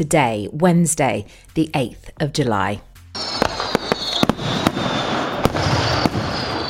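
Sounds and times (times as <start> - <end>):
speech: 0.0 - 3.3
fireworks exploding: 3.2 - 6.6.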